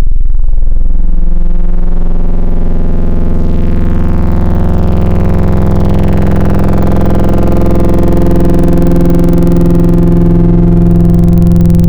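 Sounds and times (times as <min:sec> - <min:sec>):
wavetable synthesizer triangle wave sweep: 0:00.0 - 0:11.8.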